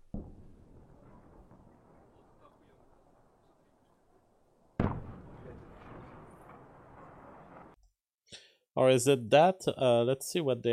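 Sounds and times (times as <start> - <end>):
distant explosion of a shot-down airplane: 0.0 - 7.8
speech: 8.8 - 10.7.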